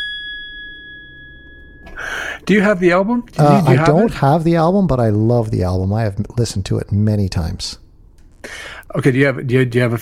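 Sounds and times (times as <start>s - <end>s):
bright bell ding rung to mark a new fact: 0.0s - 2.0s
speech: 2.5s - 7.8s, 8.4s - 9.9s.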